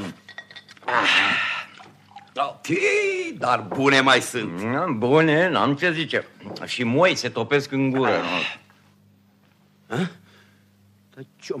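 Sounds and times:
speech: 0:00.9 - 0:01.4, 0:02.4 - 0:08.6, 0:09.9 - 0:10.2, 0:11.2 - 0:11.5
water pouring into a glass: 0:01.2 - 0:02.5.

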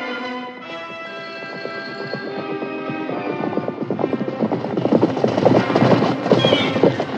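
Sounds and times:
horse hooves clip-clopping on a road: 0:00.6 - 0:07.1
rumbling texture: 0:01.4 - 0:07.1.

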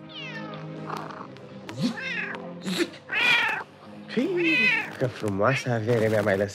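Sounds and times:
cat meowing: 0:00.0 - 0:01.0, 0:01.9 - 0:02.4, 0:03.1 - 0:03.7, 0:04.3 - 0:06.2
speech: 0:04.2 - 0:06.5.

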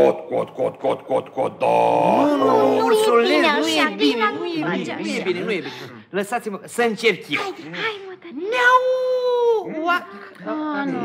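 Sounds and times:
short broken vocal sounds: 0:00.0 - 0:06.1
speech: 0:00.1 - 0:11.0
person's voice imitating a cat's meow: 0:01.8 - 0:03.3.

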